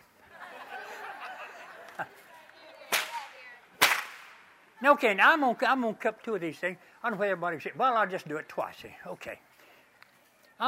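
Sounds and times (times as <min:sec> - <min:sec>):
laughter: 0:00.0 - 0:02.9
speech: 0:02.0 - 0:02.3, 0:04.8 - 0:09.5
long whip cracking: 0:02.9 - 0:04.5.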